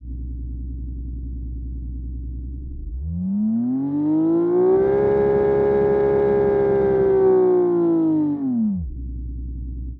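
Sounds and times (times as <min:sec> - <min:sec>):
Japanese V6 engine recorded from outside: 0:00.0 - 0:09.9.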